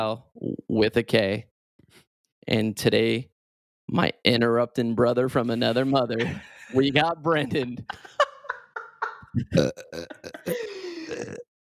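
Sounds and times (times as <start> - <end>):
speech: 0.0 - 1.5, 2.4 - 3.3, 3.9 - 8.2, 9.3 - 11.5
laughter: 5.5 - 11.4
brief vocal sounds: 9.4 - 11.4
weak burp: 9.6 - 11.4.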